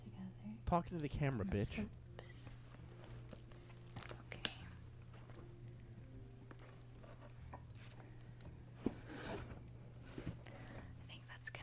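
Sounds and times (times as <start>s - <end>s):
low steady hum: 0.0s - 11.6s
speech: 0.7s - 2.0s
zipper on a storage bin drawn shut: 8.9s - 9.5s.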